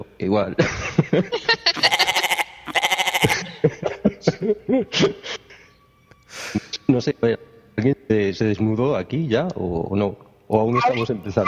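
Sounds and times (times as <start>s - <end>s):
speech: 0.2s - 1.8s, 4.3s - 5.4s, 6.9s - 11.4s
scattered laughter: 0.6s - 2.4s, 3.1s - 5.7s
human voice imitating a mountain goat bleat: 1.7s - 3.5s.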